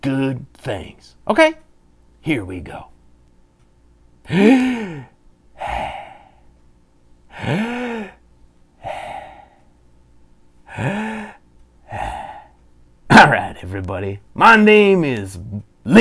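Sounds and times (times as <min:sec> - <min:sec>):
speech: 0:00.0 - 0:01.6, 0:02.2 - 0:02.9, 0:04.2 - 0:06.0, 0:07.4 - 0:07.8, 0:13.2 - 0:15.9
group taking deep breaths: 0:04.3 - 0:06.5, 0:08.8 - 0:09.7, 0:10.7 - 0:12.6.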